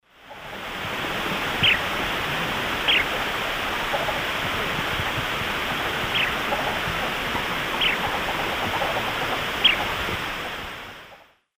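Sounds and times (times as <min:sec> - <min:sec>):
Charadrius collaris calls in South American Eastern Lowlands: 0:00.3 - 0:10.6.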